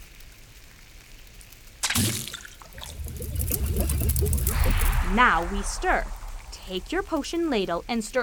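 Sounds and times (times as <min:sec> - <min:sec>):
mixed potion ingredients dumped splashing into a bowl: 0:01.8 - 0:07.3
speech: 0:02.0 - 0:02.4, 0:04.2 - 0:08.2.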